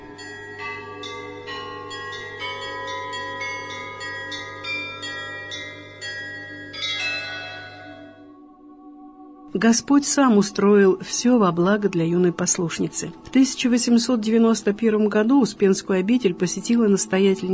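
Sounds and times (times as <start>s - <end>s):
monastery bell tolling for an all-night vigil: 0.0s - 8.4s
speech: 9.6s - 17.5s.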